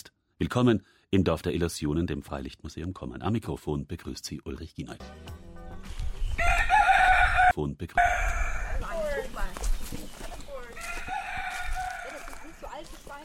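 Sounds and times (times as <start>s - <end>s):
speech: 0.4s - 5.4s, 7.6s - 8.4s
rooster crowing: 6.4s - 9.1s, 10.8s - 12.7s.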